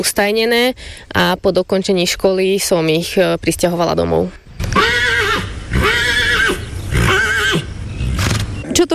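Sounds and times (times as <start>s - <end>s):
speech: 0.0s - 4.9s, 8.8s - 8.9s
horse neighing: 4.6s - 8.3s.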